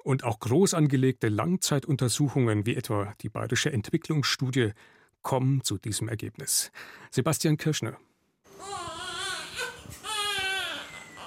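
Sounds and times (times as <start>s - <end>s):
speech: 0.0s - 8.9s
tiny premature baby crying in thin wavering wails: 8.5s - 11.2s.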